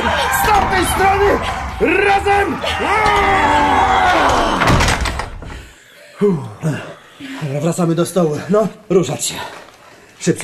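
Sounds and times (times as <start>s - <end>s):
heavy door grinding and creaking as it is forced closed and slammed: 0.3s - 5.7s
speech: 0.8s - 4.6s, 6.2s - 10.4s.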